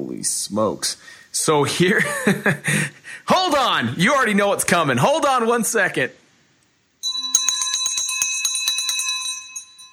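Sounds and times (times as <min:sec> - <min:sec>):
speech: 0:00.2 - 0:06.2
laughter: 0:01.9 - 0:02.9
victory bell ringing rapidly: 0:07.0 - 0:09.9.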